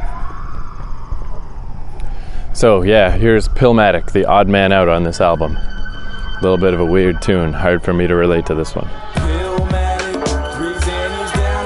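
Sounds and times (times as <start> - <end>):
low rumble of traffic: 0.0 - 9.1
ambulance siren wailing at sunrise: 0.0 - 11.6
speech: 2.6 - 5.7, 6.4 - 9.2.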